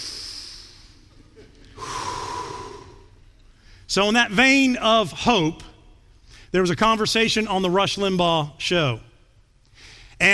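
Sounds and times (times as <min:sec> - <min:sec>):
group breathing together: 0:00.0 - 0:03.9, 0:09.6 - 0:10.2
speech: 0:03.9 - 0:05.7, 0:06.5 - 0:09.1.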